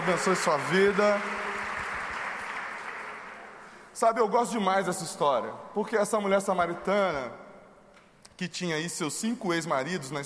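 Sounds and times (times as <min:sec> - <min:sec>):
speech: 0:00.0 - 0:01.4, 0:04.0 - 0:07.4, 0:08.4 - 0:10.2
audience applauding: 0:00.0 - 0:03.8.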